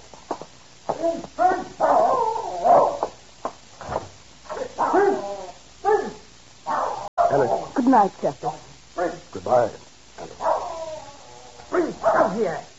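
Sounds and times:
speech: 0:01.0 - 0:02.8, 0:07.9 - 0:09.8, 0:11.7 - 0:12.7
dog giving short yelping barks: 0:01.0 - 0:03.1, 0:04.5 - 0:07.5, 0:10.4 - 0:11.0, 0:11.7 - 0:12.6.

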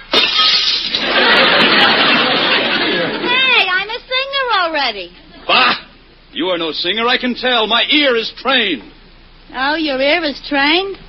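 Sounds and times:
glass shattering: 0:00.0 - 0:02.2
laughter: 0:00.4 - 0:03.5
speech: 0:04.9 - 0:05.8, 0:06.4 - 0:08.9, 0:09.5 - 0:11.0.

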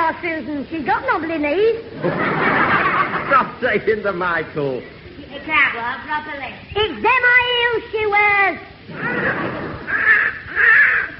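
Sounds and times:
speech: 0:00.2 - 0:10.8
laughter: 0:01.9 - 0:04.0, 0:08.9 - 0:10.0
young crow with an injured leg cawing: 0:08.9 - 0:11.1.

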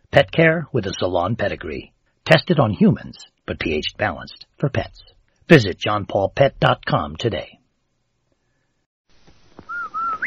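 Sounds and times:
faint noise: 0:00.0 - 0:10.2
speech: 0:00.2 - 0:07.6
single clear whistled tone in a short melodic phrase: 0:09.6 - 0:10.2.

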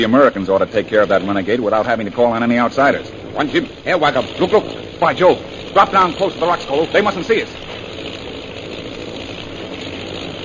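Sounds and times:
speech: 0:00.0 - 0:08.2
bomber plane engines droning overhead: 0:00.0 - 0:10.4.

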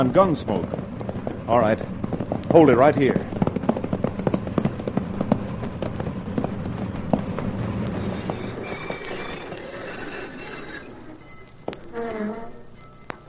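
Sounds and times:
speech: 0:00.0 - 0:00.8, 0:01.5 - 0:03.3
low rumble: 0:00.0 - 0:09.1
horse hooves clip-clopping: 0:00.0 - 0:13.2.

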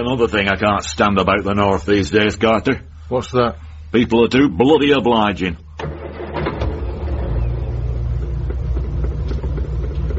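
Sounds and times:
speech: 0:00.0 - 0:05.6
car engine starting and pulling away: 0:05.8 - 0:10.1.

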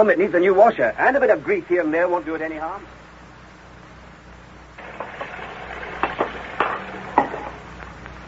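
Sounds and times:
speech: 0:00.0 - 0:03.0
crockery knocking: 0:04.8 - 0:07.6
dishes clinking and clattering as they are washed: 0:04.8 - 0:07.6.

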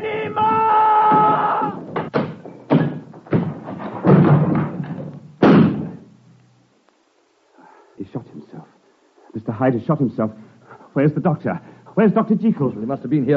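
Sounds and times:
door being smashed in, radio drama sound effect: 0:00.2 - 0:06.0
speech: 0:09.6 - 0:13.3.

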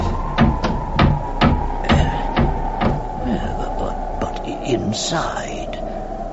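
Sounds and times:
old wooden pigsty door being forced open: 0:00.0 - 0:03.1
low constant hum: 0:00.0 - 0:06.3
speech: 0:04.9 - 0:05.7.

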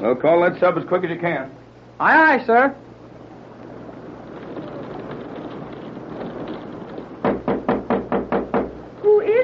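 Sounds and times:
speech: 0:00.0 - 0:02.9
steady rushing noise: 0:01.6 - 0:09.4
loud knocks on a locked door: 0:05.8 - 0:08.9.

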